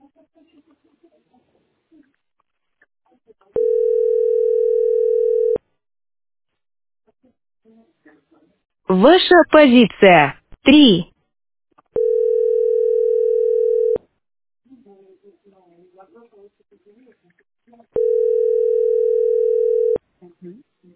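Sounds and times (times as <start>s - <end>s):
electronic phone ringing tone of an incoming call: 3.6s - 5.6s, 12.0s - 14.0s, 18.0s - 20.0s
speech: 8.9s - 11.1s.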